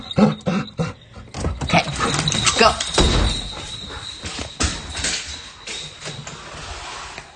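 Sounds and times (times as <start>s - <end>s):
speech: 0.2s - 0.4s
door opening: 1.3s - 6.7s.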